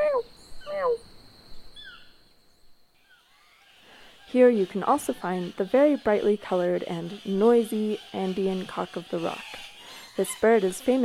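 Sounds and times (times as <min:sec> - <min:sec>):
toucan calling in cloud forest: 0:03.0 - 0:11.0
speech: 0:04.3 - 0:11.0.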